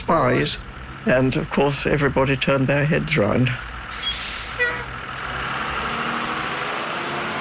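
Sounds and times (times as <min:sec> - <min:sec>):
large bus diesel engine rumbling and idling: 0:00.0 - 0:07.3
speech: 0:00.1 - 0:03.7
large bus air brakes hissing: 0:03.9 - 0:04.9.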